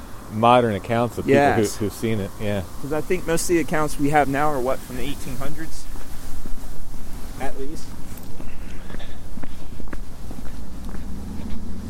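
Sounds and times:
rumbling noise: 0:00.0 - 0:11.8
speech: 0:00.3 - 0:05.9, 0:07.4 - 0:08.0
footsteps walking across a road toward a hillside: 0:05.8 - 0:11.8.

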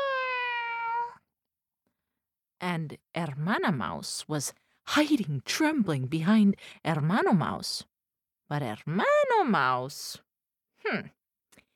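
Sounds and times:
long drawn-out cat meow, likely a human imitating a cat: 0:00.0 - 0:01.2
speech: 0:02.6 - 0:07.9, 0:08.5 - 0:10.2, 0:10.8 - 0:11.2.

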